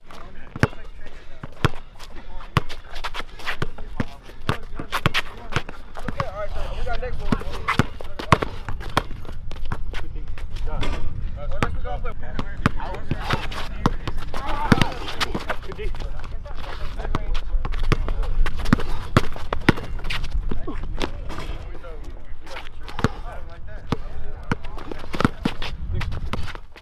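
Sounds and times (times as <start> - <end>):
basketball game ambience on a street court: 0.0 - 26.8.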